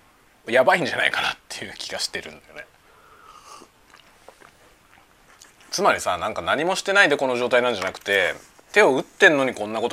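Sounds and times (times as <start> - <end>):
speech: 0.4 - 2.8, 5.7 - 9.9
person chewing homemade lunch with wet smacks and crunchy bites: 3.3 - 5.8.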